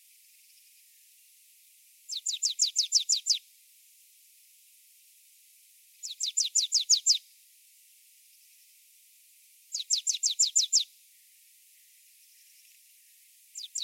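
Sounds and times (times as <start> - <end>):
Marsh tit Poecile palustris repeating thin downslurred notes: 2.1 - 3.4, 6.0 - 7.2, 9.7 - 10.9, 13.6 - 13.8.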